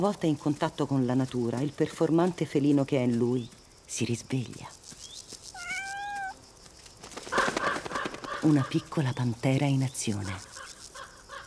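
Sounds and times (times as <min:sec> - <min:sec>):
speech: 0:00.0 - 0:04.8, 0:08.4 - 0:10.5
soft rustling and scuffling: 0:00.0 - 0:07.6
kitten giving a high thin meow: 0:05.6 - 0:06.4.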